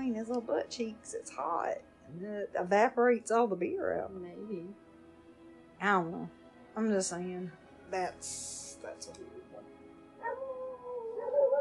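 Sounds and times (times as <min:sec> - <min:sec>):
speech: 0:00.2 - 0:04.8, 0:05.8 - 0:09.4
dogs howling and whining: 0:10.2 - 0:11.5.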